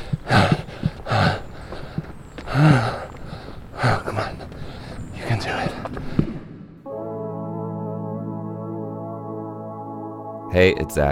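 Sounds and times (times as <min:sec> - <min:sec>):
heavy labored breathing: 0:00.0 - 0:06.7
speech: 0:02.6 - 0:03.0, 0:10.6 - 0:11.1.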